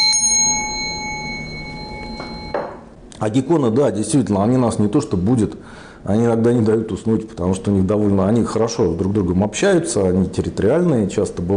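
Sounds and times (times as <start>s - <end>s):
small bell ringing: 0.0s - 2.8s
speech: 3.2s - 11.5s.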